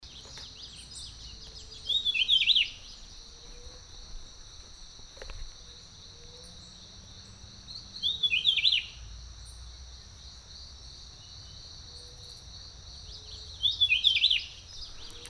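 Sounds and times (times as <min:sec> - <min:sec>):
Rufous-breasted Wren in Panama: 0:00.0 - 0:09.7, 0:11.2 - 0:15.2.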